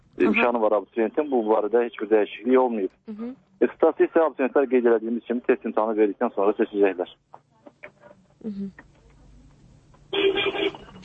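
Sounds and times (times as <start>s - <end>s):
quiet voice-like sounds: 0.2s - 7.1s
speech: 0.2s - 7.5s, 8.4s - 8.9s
telephone ringing with an incoming listener call on a phone line: 10.1s - 11.0s.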